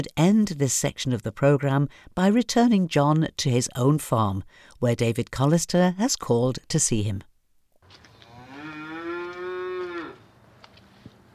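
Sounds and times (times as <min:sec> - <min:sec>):
speech: 0:00.0 - 0:07.3
cow mooing on a farm: 0:08.2 - 0:10.2.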